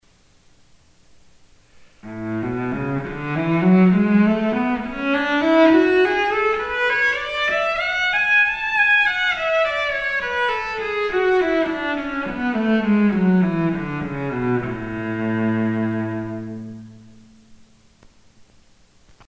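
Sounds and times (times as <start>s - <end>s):
cello playing in A major: 2.0s - 17.0s.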